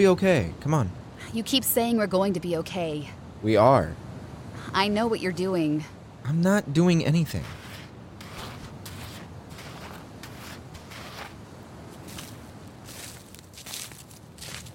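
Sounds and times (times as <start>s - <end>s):
speech: 0.0s - 4.0s, 4.7s - 7.6s
heavy footsteps stomping through tall dry grass: 7.5s - 14.7s.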